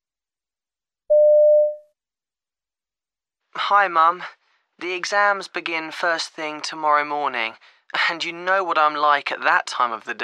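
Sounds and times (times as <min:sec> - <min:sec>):
answering machine beep: 0:01.1 - 0:01.8
speech: 0:03.7 - 0:10.2.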